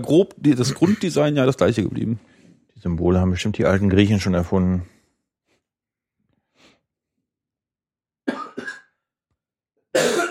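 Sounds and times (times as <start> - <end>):
speech: 0.0 - 4.9
harsh dry coughs: 8.2 - 9.0, 9.9 - 10.2.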